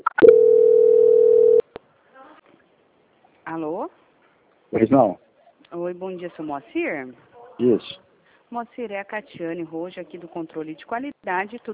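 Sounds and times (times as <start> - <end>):
telephone call-transfer tone: 0.0 - 1.6
speech: 4.8 - 11.7.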